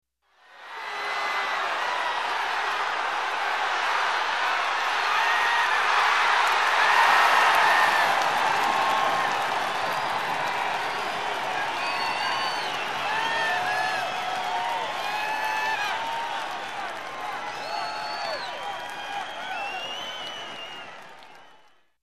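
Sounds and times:
sports game crowd cheering: 0.3 - 21.9.

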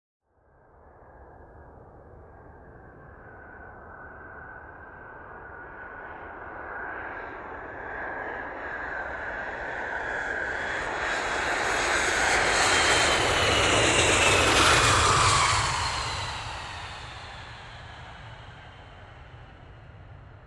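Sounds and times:
aircraft ascending: 8.8 - 20.4.

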